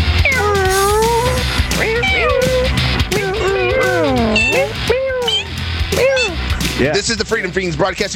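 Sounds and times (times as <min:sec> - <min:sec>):
several kittens meowing: 0:00.1 - 0:06.7
speech: 0:07.1 - 0:08.1.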